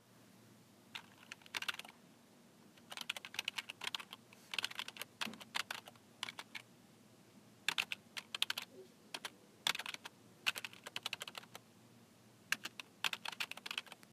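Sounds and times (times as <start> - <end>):
keyboard typing: 0.9 - 2.0, 2.7 - 6.7, 7.7 - 11.6, 12.5 - 14.1.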